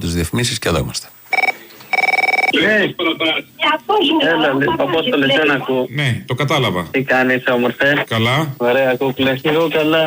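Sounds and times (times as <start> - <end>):
speech: 0.1 - 1.2, 2.5 - 10.0
telephone ringing with a warbling electronic trill: 1.3 - 2.8.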